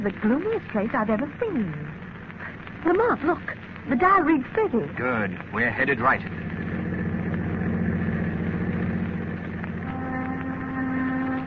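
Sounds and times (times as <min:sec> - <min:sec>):
speech: 0:00.0 - 0:02.1, 0:02.8 - 0:06.4
car engine droning while driving in fog: 0:04.9 - 0:11.4.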